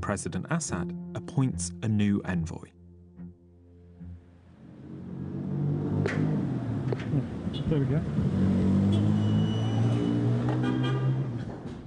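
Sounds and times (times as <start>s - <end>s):
speech: 0.1s - 2.8s, 7.0s - 9.3s
car engine rumbling in city traffic in Damascus Syria: 4.0s - 10.7s
busy street noise in Damascus Syria: 4.1s - 11.8s.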